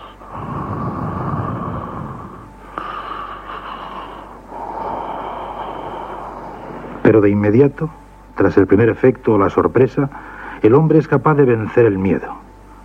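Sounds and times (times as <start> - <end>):
heavy laboured rasping breathing: 0.0 - 7.2, 10.1 - 10.6
speech: 7.1 - 12.4.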